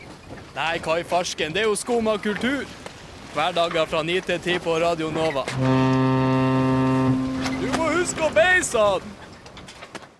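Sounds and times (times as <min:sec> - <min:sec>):
speech: 0:00.6 - 0:06.3, 0:08.2 - 0:09.2
small fishing boat horn blast: 0:05.5 - 0:08.4.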